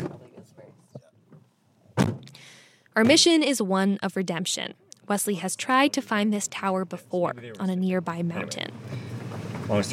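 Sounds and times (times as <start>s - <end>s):
red pickup truck door closing: 2.0s - 2.3s
speech: 3.0s - 9.1s, 9.7s - 9.9s.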